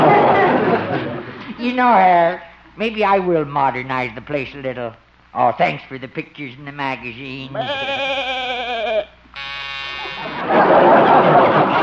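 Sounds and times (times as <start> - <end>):
laughter: 0.0 - 1.6, 10.1 - 11.8
speech: 1.6 - 9.5
electric door buzzer: 9.3 - 10.6.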